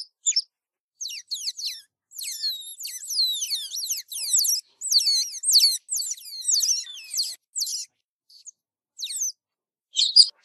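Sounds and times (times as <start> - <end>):
otter squeaking: 1.0 - 7.9.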